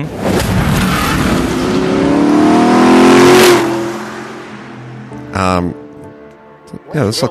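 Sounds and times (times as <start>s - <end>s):
speech: 0.0s - 0.3s, 5.4s - 5.8s, 6.7s - 7.2s
Shelby Cobra engine with Weber carburetors revving: 0.2s - 5.6s.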